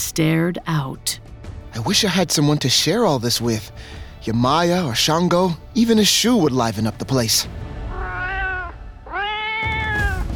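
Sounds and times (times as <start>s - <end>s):
speech: 0.0s - 1.2s, 1.8s - 7.7s
cat meowing and yowling: 7.9s - 10.3s.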